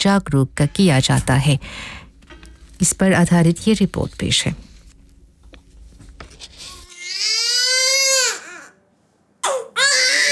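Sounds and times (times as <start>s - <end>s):
speech: 0.0s - 2.0s, 2.8s - 4.7s
newborn baby crying: 6.9s - 8.8s, 9.4s - 10.2s.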